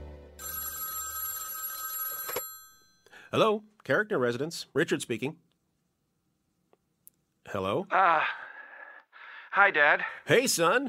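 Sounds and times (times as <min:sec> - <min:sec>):
telephone bell ringing: 0:00.4 - 0:03.1
speech: 0:03.3 - 0:05.5, 0:07.5 - 0:08.4, 0:09.6 - 0:10.8.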